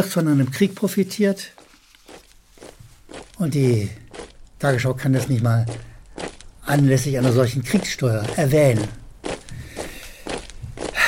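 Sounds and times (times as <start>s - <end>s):
speech: 0.0s - 1.6s, 3.4s - 4.0s, 4.6s - 5.9s, 6.7s - 9.0s
marching footsteps in lockstep: 1.4s - 11.0s.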